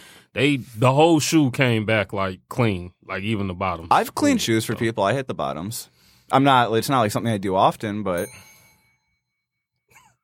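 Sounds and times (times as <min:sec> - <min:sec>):
speech: 0:00.4 - 0:08.5
faint bell ring: 0:08.1 - 0:10.2.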